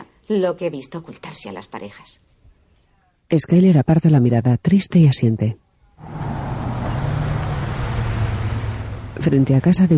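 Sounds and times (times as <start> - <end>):
speech: 0.3 - 2.3, 3.3 - 6.3, 9.2 - 9.9
car engine rumbling with road noise: 6.0 - 9.9.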